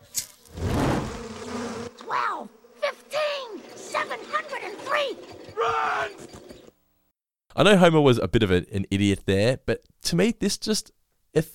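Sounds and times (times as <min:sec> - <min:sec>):
swarm of bees buzzing around a hive: 0:00.3 - 0:06.8
warbling voice-like cries and moaning tones: 0:02.0 - 0:06.4
speech: 0:07.6 - 0:11.5.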